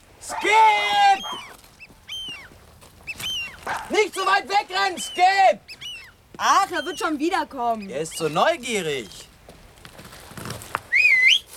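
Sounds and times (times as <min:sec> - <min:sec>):
speech: 0:00.3 - 0:01.4, 0:03.9 - 0:05.7, 0:06.4 - 0:09.2
soft rustling: 0:01.2 - 0:04.8, 0:05.7 - 0:11.5
person whistling: 0:10.9 - 0:11.5.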